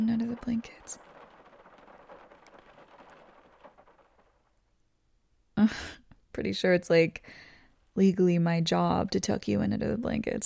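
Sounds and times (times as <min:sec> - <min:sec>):
brighter raindrops pattering on a surface: 0:00.0 - 0:04.7
faint low rumble: 0:00.0 - 0:04.7
speech: 0:00.4 - 0:01.1, 0:05.6 - 0:10.4
heavy rain hissing outside: 0:00.4 - 0:04.4.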